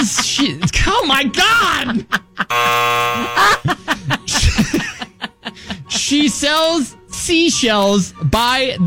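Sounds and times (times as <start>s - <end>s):
speech: 0.0s - 3.9s, 6.1s - 8.8s
people laughing: 0.0s - 6.2s
loud flat game show buzzer: 2.5s - 3.6s.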